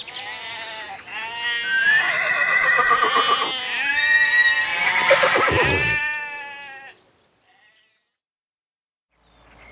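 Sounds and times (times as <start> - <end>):
horse on a farm whinnying: 1.8 - 6.5.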